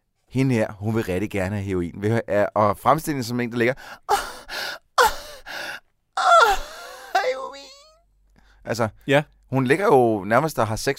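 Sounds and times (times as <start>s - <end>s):
speech: 0.3s - 4.3s, 8.7s - 10.9s
woman moaning breathily in a film: 4.1s - 5.5s, 6.2s - 8.0s.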